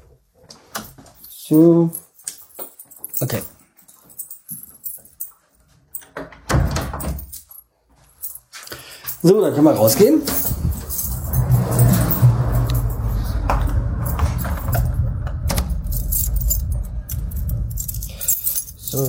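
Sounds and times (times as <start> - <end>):
many keys jangling on a keyring: 1.1 - 19.0
speech: 1.5 - 2.0, 3.2 - 3.6, 9.2 - 10.6
steady low rumble: 10.3 - 19.0.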